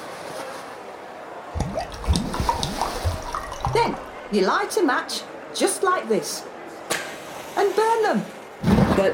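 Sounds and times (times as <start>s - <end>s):
lighter fuel poured over trousers: 1.6s - 4.3s
speech: 4.3s - 6.5s, 7.6s - 8.4s, 9.0s - 9.1s.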